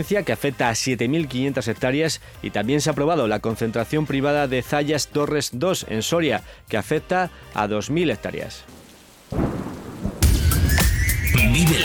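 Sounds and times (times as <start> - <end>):
speech: 0.0 - 9.4, 11.6 - 11.8
deep rumbling thunder: 8.7 - 10.8
steady rain: 8.7 - 10.8.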